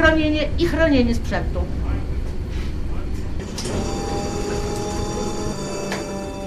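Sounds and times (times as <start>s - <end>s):
speech: 0.0s - 1.9s
new air-conditioned tram emergency braking at about 30 km/h: 0.0s - 6.4s
metallic tram wheel screech: 3.6s - 6.4s.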